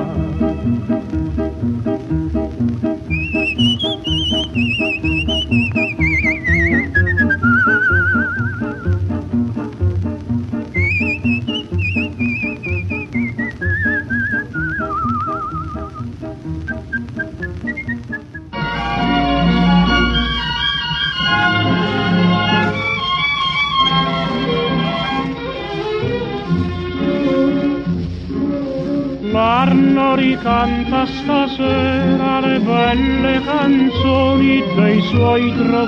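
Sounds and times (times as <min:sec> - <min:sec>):
steady instrumental music: 0:00.0 - 0:35.8
person whistling a bright wavering melody: 0:03.1 - 0:08.9, 0:10.7 - 0:16.1, 0:16.7 - 0:18.5.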